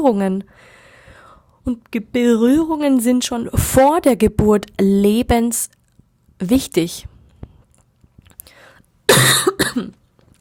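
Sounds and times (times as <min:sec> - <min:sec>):
speech: 0:00.0 - 0:00.8, 0:01.6 - 0:05.8, 0:06.4 - 0:07.1, 0:09.1 - 0:10.0
small breaths: 0:00.5 - 0:01.6, 0:08.4 - 0:09.0
person coughing: 0:09.1 - 0:10.0.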